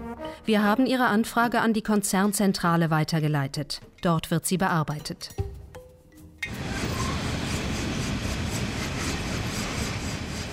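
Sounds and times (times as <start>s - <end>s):
speech: 0.4s - 5.5s
freight train of open wagons hauling coal from the Cesar mining area in Colombia: 6.5s - 10.5s.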